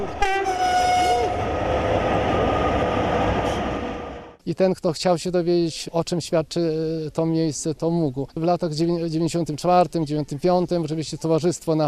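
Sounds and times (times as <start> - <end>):
train horn blaring: 0.0 - 4.4
speech: 4.5 - 11.8.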